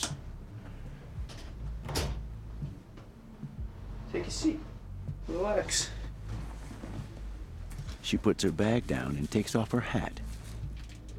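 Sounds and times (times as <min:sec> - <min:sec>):
low steady hum: 0:00.0 - 0:11.1
door opening into a room: 0:01.2 - 0:02.3
speech: 0:04.1 - 0:04.7, 0:05.3 - 0:06.0, 0:08.1 - 0:10.1
soft rustle: 0:04.5 - 0:09.6.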